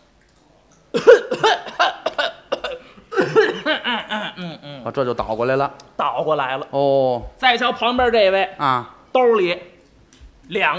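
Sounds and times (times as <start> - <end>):
person faking a cough: 0.9 - 4.8
speech: 4.9 - 9.7, 10.5 - 10.7.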